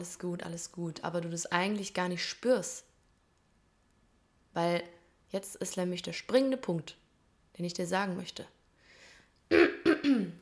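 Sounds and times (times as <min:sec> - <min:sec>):
speech: 0:00.0 - 0:02.9, 0:04.6 - 0:07.0, 0:07.6 - 0:08.6, 0:09.5 - 0:10.4
person clearing throat: 0:09.5 - 0:10.4.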